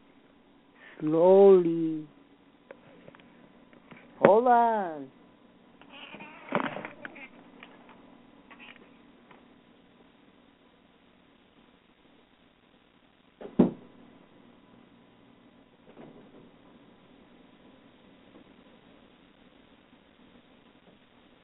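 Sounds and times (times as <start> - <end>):
speech: 1.0 - 2.2, 4.3 - 5.2
cat meowing for attention: 5.8 - 7.4.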